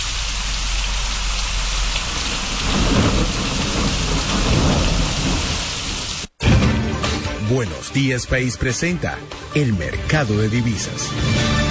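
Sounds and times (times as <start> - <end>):
heavy rain pouring: 0.0 - 6.4
low thunder rumbling: 2.1 - 6.2
speech: 7.5 - 11.6.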